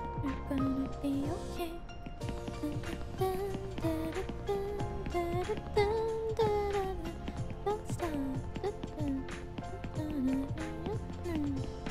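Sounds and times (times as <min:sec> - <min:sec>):
person singing: 0:00.2 - 0:01.9, 0:02.5 - 0:11.8
person humming: 0:02.5 - 0:11.7.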